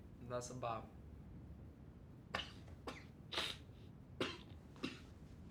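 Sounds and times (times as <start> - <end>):
speech: 0.3 - 1.0
short harsh coughs: 2.3 - 5.2.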